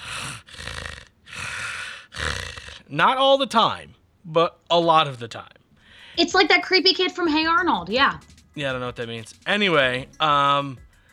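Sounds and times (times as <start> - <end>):
person imitating a dog's heavy bulldog-like breathing: 0.0 - 2.9
speech: 2.9 - 5.6, 6.2 - 10.8.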